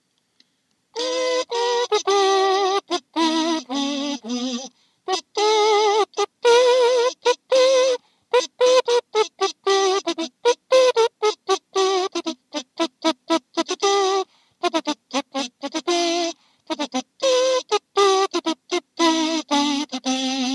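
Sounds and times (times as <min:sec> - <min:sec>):
trumpet kazoo: 0:01.0 - 0:20.5.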